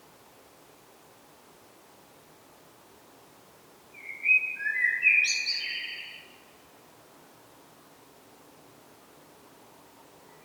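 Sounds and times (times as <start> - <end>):
faint steady background noise: 0.0 - 10.4
common blackbird singing: 4.0 - 6.3.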